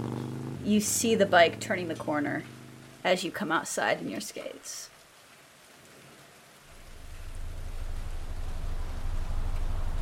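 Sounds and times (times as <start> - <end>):
heavy rain pouring: 0.4 - 10.0
speech: 0.7 - 4.9
low rumbling undertone: 6.7 - 10.0.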